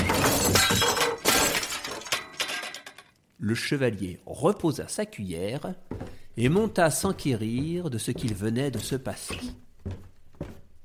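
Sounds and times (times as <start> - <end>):
glass shattering upstairs in a castle: 0.0 - 3.2
speech: 3.4 - 10.0.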